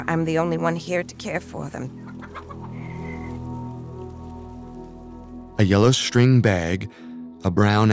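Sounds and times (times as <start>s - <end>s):
speech: 0.0s - 2.0s, 5.6s - 7.9s
chickens clucking: 2.0s - 3.4s
rain-like hiss: 2.6s - 5.6s.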